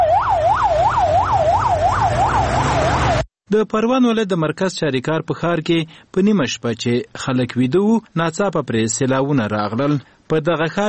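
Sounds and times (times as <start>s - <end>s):
ambulance siren wailing during a flood rescue in Charikar, Parwan province: 0.0s - 3.3s
speech: 3.5s - 10.8s.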